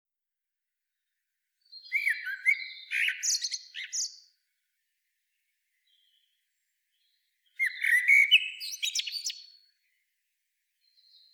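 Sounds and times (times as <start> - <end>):
common blackbird singing: 1.7 - 4.3, 5.8 - 9.7.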